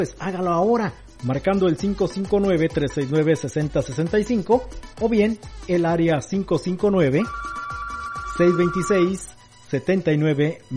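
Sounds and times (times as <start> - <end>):
speech: 0.0 - 7.6, 8.4 - 10.7
telephone ringing: 7.3 - 9.3.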